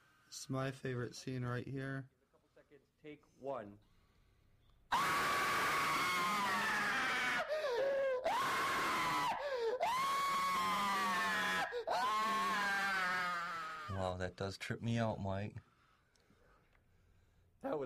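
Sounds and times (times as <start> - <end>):
speech: 0.3 - 3.9, 14.0 - 15.7, 17.7 - 17.8
sustained human scream recorded for a radio show: 4.9 - 14.0.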